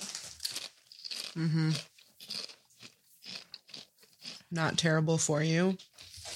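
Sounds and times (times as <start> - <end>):
biting and crunching a thin crispy snack: 0.0 - 4.5
chewing: 0.0 - 4.5
speech: 1.4 - 1.9, 4.5 - 5.9.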